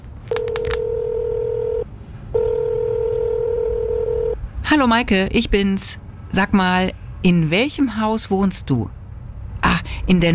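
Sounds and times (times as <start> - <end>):
telephone keypad dialing with DTMF tones: 0.3 - 1.8, 2.4 - 4.4
steady telephone tone: 0.3 - 4.4
speech: 4.7 - 9.0, 10.1 - 10.3.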